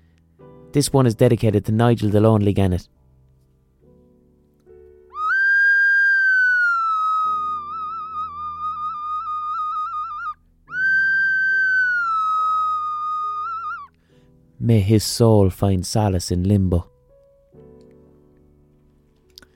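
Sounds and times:
speech: 0.7 - 3.0, 14.7 - 16.9
Spanish clay ocarina melody: 5.1 - 14.0.

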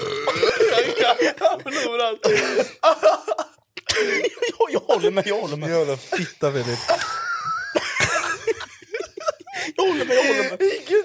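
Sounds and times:
short croaky guttural burp: 0.0 - 1.2
laughter: 0.3 - 5.5, 6.2 - 11.0
speech: 1.1 - 3.4, 4.0 - 7.1, 9.8 - 11.0.

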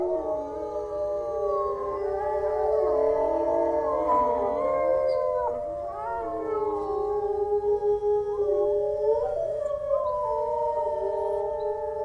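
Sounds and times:
several wolves howling in chorus: 0.0 - 12.0.

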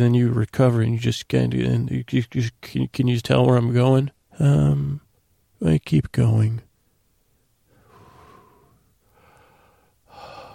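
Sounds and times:
speech: 0.0 - 5.0, 5.6 - 6.7
heavy breathing from someone catching their breath: 7.7 - 10.5.

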